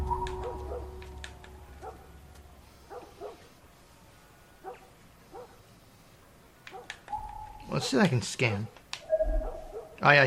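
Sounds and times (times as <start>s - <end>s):
dog barking: 0.4s - 0.9s, 1.8s - 2.1s, 2.9s - 3.5s, 4.6s - 5.6s, 6.7s - 7.0s, 7.7s - 10.0s
speech: 7.8s - 8.8s, 10.0s - 10.2s.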